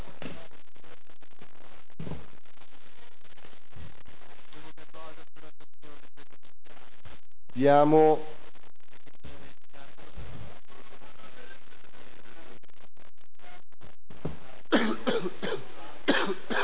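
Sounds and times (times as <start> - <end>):
quiet noise: 0.0 - 16.6
speech: 7.6 - 8.3
person coughing during a council meeting: 14.8 - 16.6.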